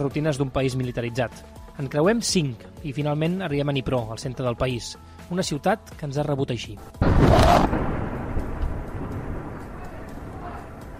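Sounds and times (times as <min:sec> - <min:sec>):
speech: 0:00.0 - 0:07.8
bombing explosion in a city centre: 0:07.0 - 0:10.9
long low rumble after the blast: 0:07.0 - 0:10.9.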